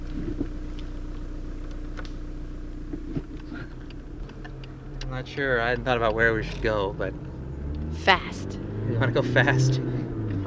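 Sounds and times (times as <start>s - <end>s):
faint clicks and knocks: 0.0s - 7.9s
car engine running on vegetable oil idling: 0.0s - 10.4s
speech: 5.2s - 7.3s, 8.0s - 10.4s.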